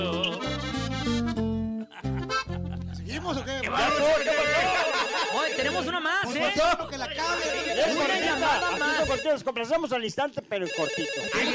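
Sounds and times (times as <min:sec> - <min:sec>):
laughter: 0:00.0 - 0:06.5, 0:07.2 - 0:09.2
telephone ringing: 0:03.7 - 0:09.7, 0:10.6 - 0:11.5
speech: 0:05.4 - 0:11.5.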